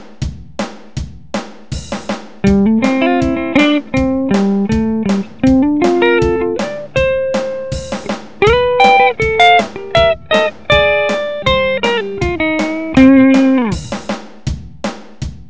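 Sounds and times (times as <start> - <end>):
dry country music: 2.4 - 13.9.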